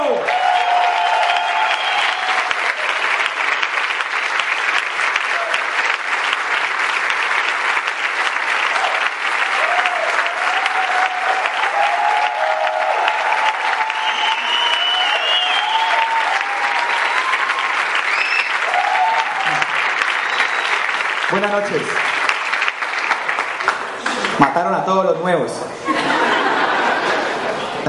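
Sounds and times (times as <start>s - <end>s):
people whooping and cheering: 0.1s - 3.5s, 5.1s - 6.0s, 8.5s - 21.0s
large audience applause: 0.1s - 24.7s, 25.9s - 27.8s
laughter: 25.7s - 27.8s.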